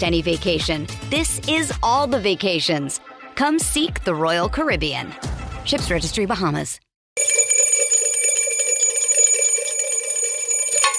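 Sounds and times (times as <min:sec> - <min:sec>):
speech: 0:00.0 - 0:06.8
bell ringing: 0:07.2 - 0:10.9.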